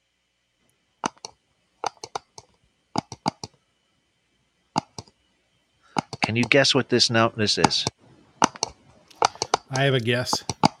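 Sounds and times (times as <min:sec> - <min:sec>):
computer mouse clicking: 0:01.0 - 0:03.6, 0:04.8 - 0:05.1, 0:06.0 - 0:06.6, 0:08.4 - 0:10.7
speech: 0:06.3 - 0:08.0, 0:09.8 - 0:10.5.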